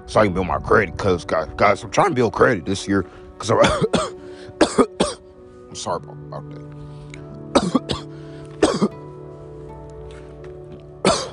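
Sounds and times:
speech: 0.1s - 4.9s, 5.8s - 6.9s
person coughing: 3.6s - 5.2s, 7.5s - 9.0s, 11.0s - 11.3s.

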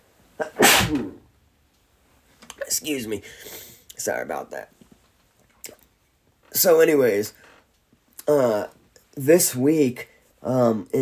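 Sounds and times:
single loud sneeze: 0.4s - 1.2s
speech: 0.9s - 1.2s, 2.8s - 4.8s, 6.6s - 7.5s, 8.3s - 11.0s
short sharp intake of breath: 3.2s - 3.8s.

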